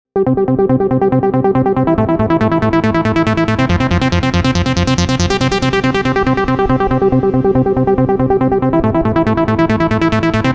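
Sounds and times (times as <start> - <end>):
old trance music: 0.2 - 10.5.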